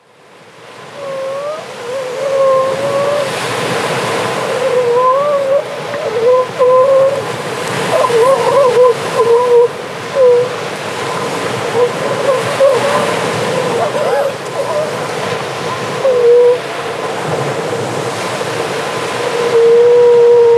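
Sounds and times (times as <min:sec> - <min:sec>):
constant surf: 0:00.0 - 0:20.5
grey seals moaning, wailing and squabbling: 0:00.9 - 0:17.3, 0:18.8 - 0:20.5.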